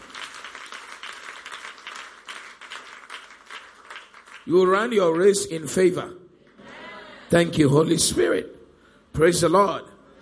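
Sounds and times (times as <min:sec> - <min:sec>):
crowd clapping hands: 0:00.0 - 0:05.4
speech: 0:04.4 - 0:06.2, 0:07.3 - 0:08.6, 0:09.2 - 0:09.9.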